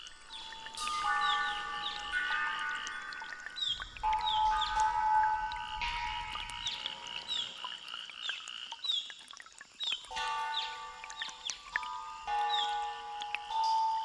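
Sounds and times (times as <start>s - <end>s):
clear ringing water-harp notes: 0.0s - 7.6s, 10.1s - 14.0s
low rumble: 3.6s - 7.4s.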